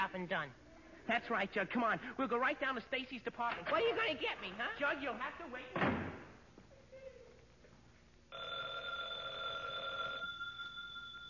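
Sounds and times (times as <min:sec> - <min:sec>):
speech: 0:00.0 - 0:06.0
faint room noise: 0:00.0 - 0:11.2
telephone bell ringing with a bright metallic tone: 0:08.3 - 0:11.2.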